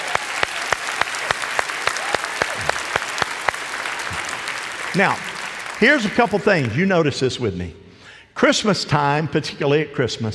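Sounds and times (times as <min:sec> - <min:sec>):
room full of people clapping heartily: 0:00.0 - 0:07.2
speech: 0:04.9 - 0:07.8, 0:08.4 - 0:10.3.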